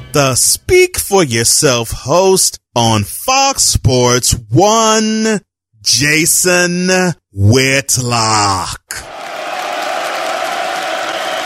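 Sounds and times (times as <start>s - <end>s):
speech: 0.2s - 9.2s
crowd clapping and cheering: 9.0s - 11.4s.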